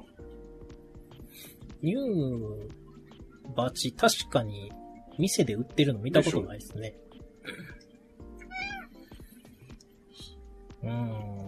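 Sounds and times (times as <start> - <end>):
speech: 1.4 - 2.8, 3.5 - 7.7, 10.8 - 11.3
cat meowing indoors: 8.4 - 9.0.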